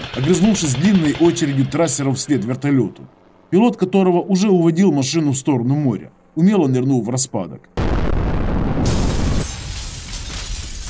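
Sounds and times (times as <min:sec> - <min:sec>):
speech: 0:00.2 - 0:07.8
explosion at a school building: 0:07.8 - 0:10.8.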